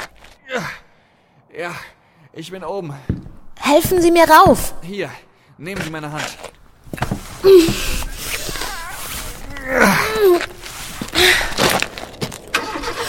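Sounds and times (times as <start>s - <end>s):
speech: 0.6s - 0.8s, 1.6s - 6.5s, 7.4s - 8.0s
shuffling noise: 6.2s - 12.2s
car engine turning over and revving: 12.5s - 13.0s.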